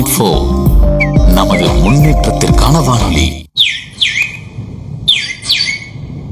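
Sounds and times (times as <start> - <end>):
speech: 0.0 - 0.7, 1.5 - 3.9
sparrow chirping: 0.8 - 2.2, 3.6 - 4.5, 5.1 - 6.0.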